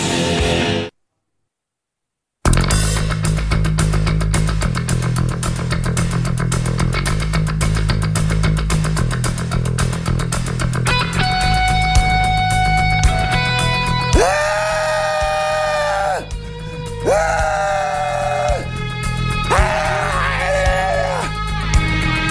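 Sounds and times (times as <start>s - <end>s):
steady musical bed: 2.5s - 22.2s
person screaming helplessly at the sky: 14.1s - 16.3s, 17.0s - 18.7s, 19.5s - 21.3s.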